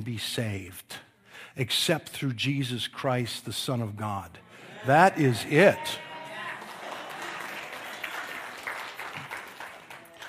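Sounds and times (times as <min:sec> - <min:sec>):
speech: 0:00.0 - 0:06.0
faint voices and cheers: 0:04.8 - 0:07.4
audience applause: 0:04.9 - 0:10.2.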